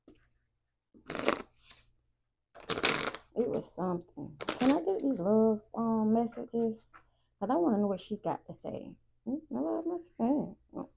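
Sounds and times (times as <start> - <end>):
deck of cards shuffled during a card reading: 1.0 - 1.9, 2.6 - 3.7, 4.3 - 5.3
speech: 3.4 - 10.9.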